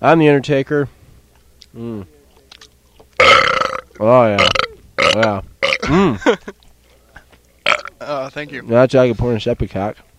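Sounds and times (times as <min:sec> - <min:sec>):
speech: 0:00.0 - 0:01.0, 0:01.7 - 0:02.2, 0:04.0 - 0:06.6, 0:08.0 - 0:10.1
loud burps after eating pizza: 0:03.2 - 0:06.2, 0:07.6 - 0:08.1.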